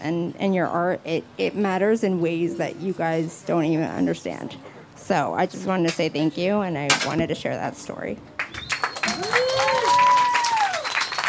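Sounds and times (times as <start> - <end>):
speech: 0.0 - 8.3
audience applauding: 8.4 - 11.2
audience whistles sliding up and down: 8.4 - 11.2.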